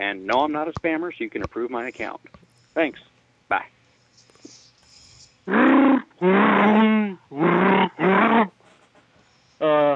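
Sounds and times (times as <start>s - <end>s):
speech: 0.0s - 3.8s
Wookiee roaring growls: 5.5s - 8.5s.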